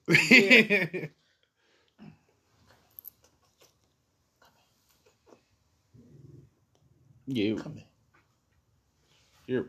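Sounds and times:
laughter: 0.1s - 1.1s
speech: 0.1s - 1.2s, 7.3s - 7.8s, 9.5s - 9.6s
faint soft noises: 1.1s - 9.6s
female dog growling at a man: 6.0s - 6.6s.

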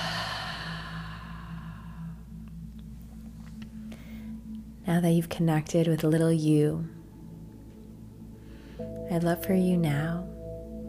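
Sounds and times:
deep breath during a guided meditation: 0.0s - 2.4s, 3.8s - 4.5s, 8.3s - 9.0s
low steady hum: 0.0s - 10.8s
speech: 4.9s - 7.0s, 9.1s - 10.4s.

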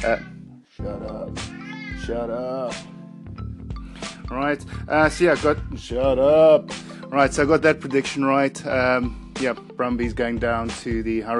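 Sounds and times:
speech: 0.0s - 3.0s, 4.3s - 11.3s
cat meowing: 1.5s - 2.4s.

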